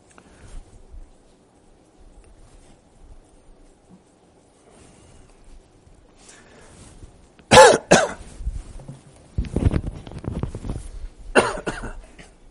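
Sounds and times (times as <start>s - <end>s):
shuffling: 0.0s - 7.4s, 8.2s - 11.3s
person coughing: 7.5s - 8.2s, 11.3s - 12.4s.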